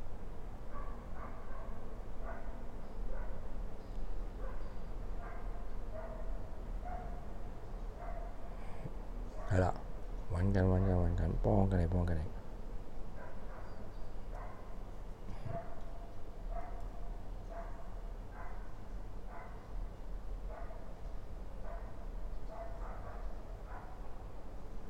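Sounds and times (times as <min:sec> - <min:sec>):
constant low hum: 0:00.0 - 0:24.8
small dogs barking and yipping outside: 0:00.7 - 0:03.5, 0:04.4 - 0:08.8, 0:09.4 - 0:09.8, 0:13.2 - 0:19.7, 0:20.5 - 0:21.0, 0:21.6 - 0:24.2
speech: 0:10.4 - 0:12.4.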